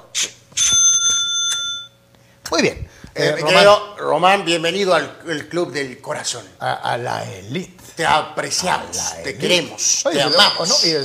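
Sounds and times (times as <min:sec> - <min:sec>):
mechanical cash register clack and bell ding: 0:00.6 - 0:02.0
speech: 0:02.6 - 0:11.0.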